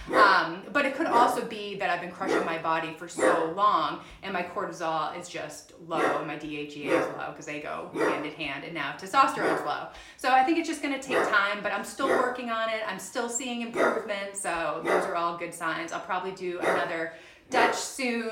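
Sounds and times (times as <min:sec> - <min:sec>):
dog barking outside: 0:00.0 - 0:01.4, 0:02.2 - 0:02.5, 0:03.2 - 0:03.6, 0:06.0 - 0:07.2, 0:07.9 - 0:08.3, 0:09.3 - 0:09.7, 0:11.1 - 0:11.4, 0:12.0 - 0:12.4, 0:13.7 - 0:14.1, 0:14.8 - 0:15.2, 0:16.6 - 0:16.9, 0:17.5 - 0:17.9
speech: 0:01.1 - 0:18.3.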